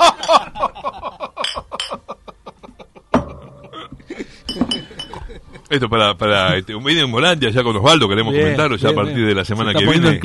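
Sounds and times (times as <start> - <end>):
laughter: 0.0 - 5.8
several glasses clinking in a toast: 1.4 - 2.0, 4.5 - 5.2
speech: 5.7 - 10.2.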